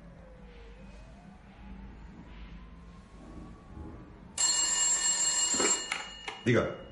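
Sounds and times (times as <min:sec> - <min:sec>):
telephone with a bright sustained electronic ring: 0:04.4 - 0:06.9
speech: 0:06.4 - 0:06.8.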